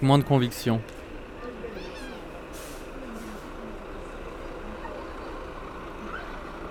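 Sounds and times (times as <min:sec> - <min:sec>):
speech: 0:00.0 - 0:01.0
busy street noise: 0:00.0 - 0:06.7
large truck engine drone: 0:00.0 - 0:06.7
faint murmuring voices: 0:01.1 - 0:06.7
truck brake hiss: 0:02.4 - 0:03.6.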